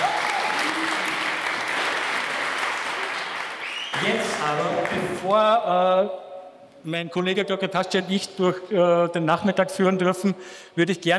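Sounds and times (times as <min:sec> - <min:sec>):
audience applause: 0:00.0 - 0:05.0
speech: 0:04.0 - 0:11.1.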